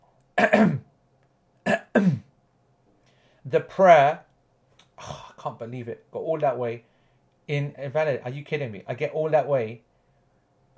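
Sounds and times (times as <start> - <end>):
person clearing their throat: 0.4 - 0.9, 1.6 - 2.3
speech: 2.0 - 2.2, 3.4 - 4.2, 5.0 - 6.9, 7.5 - 9.9.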